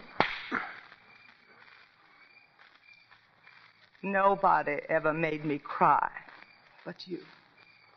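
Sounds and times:
slap on the face: 0.0 - 0.8
speech: 4.0 - 6.2, 6.8 - 7.4.

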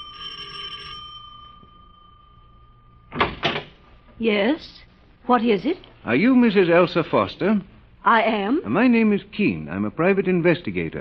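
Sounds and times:
doorbell ringing at a front door: 0.0 - 3.9
loud clattering door sounds: 3.1 - 3.8
speech: 4.2 - 10.9.

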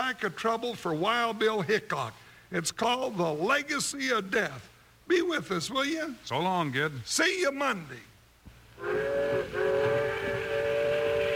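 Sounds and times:
faint steam hiss: 0.0 - 11.3
speech: 0.1 - 8.1, 8.8 - 9.6
steam train whistle blasts: 8.8 - 11.3.

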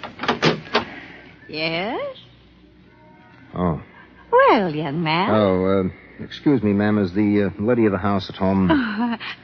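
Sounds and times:
clunks and rattles of a swinging door: 0.1 - 0.9
speech: 1.5 - 2.2, 4.5 - 9.4.

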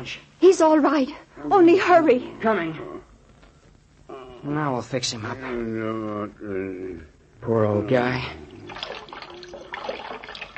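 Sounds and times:
speech: 0.0 - 3.0, 4.4 - 8.9
cold water poured to bathe a man's injured head: 8.5 - 10.5.

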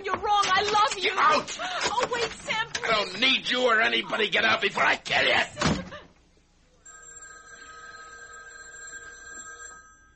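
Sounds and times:
speech: 1.1 - 5.8
house telephone bell ringing: 6.8 - 10.1.

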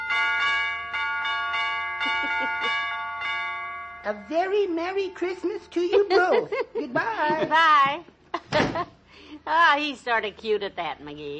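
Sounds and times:
doorbell chimes of a broken door ringing: 0.0 - 6.0
laughter: 2.0 - 2.8, 5.8 - 9.0
speech: 2.4 - 2.9, 4.0 - 11.3.

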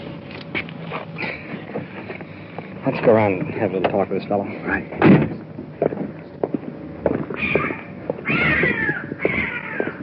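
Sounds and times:
shuffling footsteps: 0.1 - 10.0
speech: 0.6 - 1.5, 2.9 - 5.2
cat meowing: 7.4 - 10.0.

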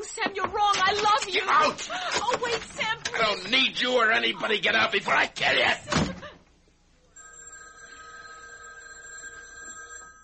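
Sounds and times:
speech: 1.3 - 6.1
house telephone ringing with electronic trill: 7.1 - 10.2.

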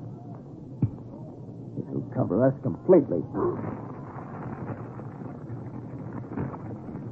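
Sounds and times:
speech: 2.1 - 3.9
wooden shack burning with roaring crackling flames: 2.8 - 7.0.

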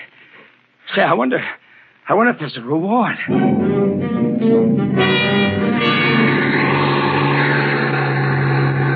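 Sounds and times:
speech: 0.9 - 5.9
bus engine revving and droning while driving on snow-covered mountain roads: 5.0 - 8.9.

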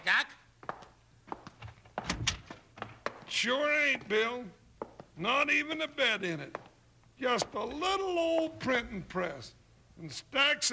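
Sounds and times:
door opening in a room: 1.6 - 3.0
door handle and latch thunks and clicks: 2.0 - 2.5
speech: 3.4 - 4.6, 5.2 - 6.6, 7.2 - 10.7.

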